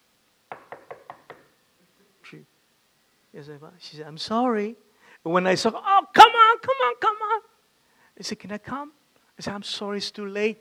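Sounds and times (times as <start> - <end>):
quick firm knocks on a door: 0.5 - 1.5
speech: 2.3 - 2.6, 3.3 - 6.1, 6.7 - 7.5, 8.2 - 10.5.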